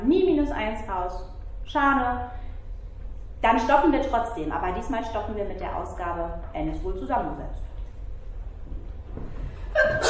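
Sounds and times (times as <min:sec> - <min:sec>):
low hum: 0:00.0 - 0:10.0
speech: 0:00.5 - 0:02.4, 0:03.4 - 0:07.7, 0:09.2 - 0:10.0
sneeze: 0:09.8 - 0:10.0.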